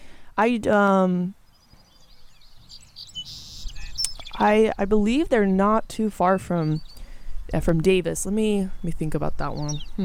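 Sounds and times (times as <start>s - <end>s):
speech: 0.4s - 1.4s, 4.4s - 6.9s, 7.5s - 10.0s
faint scattered high chirps and twitters: 1.4s - 4.6s, 5.8s - 7.3s, 8.7s - 10.0s
Brewer's Sparrow loud nasal call: 1.4s - 10.0s.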